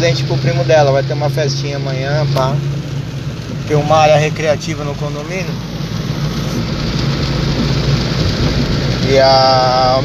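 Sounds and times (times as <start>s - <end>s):
speech: 0.0s - 2.8s, 3.5s - 5.7s, 8.5s - 10.0s
heavy rain: 0.0s - 10.0s.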